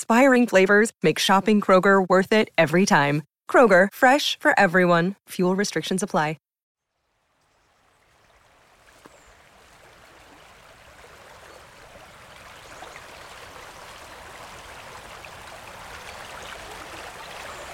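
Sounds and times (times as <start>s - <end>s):
speech: 0.0s - 6.4s
river in spate rushing fast and deep: 8.7s - 17.7s.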